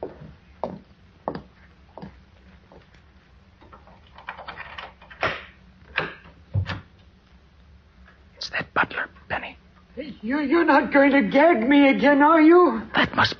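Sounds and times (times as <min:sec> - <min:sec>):
soft shuffling: 0:00.0 - 0:03.6
storage closet door in a house basement opening and closing: 0:03.7 - 0:07.0
speech: 0:08.5 - 0:13.3.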